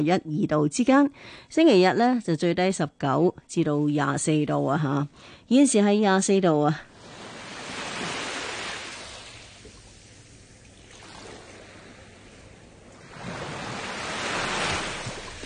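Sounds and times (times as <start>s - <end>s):
speech: 0.0s - 6.9s
ocean waves rolling in as broad hissing surf: 6.9s - 10.4s, 11.0s - 15.4s.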